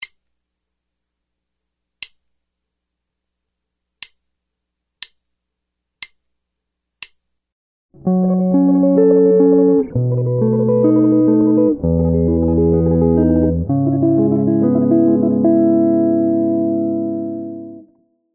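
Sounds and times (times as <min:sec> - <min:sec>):
jazz guitar solo arrangement with tremolo: 0:08.0 - 0:17.9.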